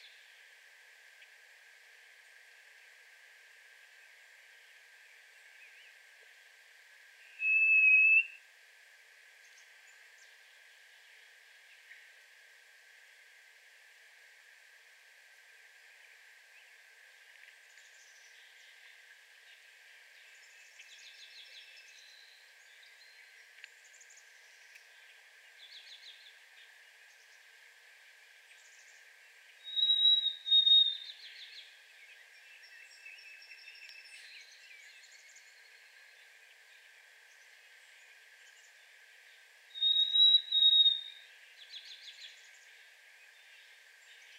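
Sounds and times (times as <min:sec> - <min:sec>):
Harris's sparrow singing in a yard: 0:07.3 - 0:08.4, 0:29.7 - 0:31.6, 0:39.8 - 0:42.2.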